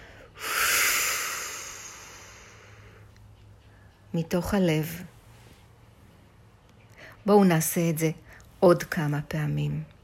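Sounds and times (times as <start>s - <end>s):
deep breath during a children's mindfulness meditation: 0.0s - 3.0s
speech: 4.1s - 5.2s, 7.3s - 9.9s.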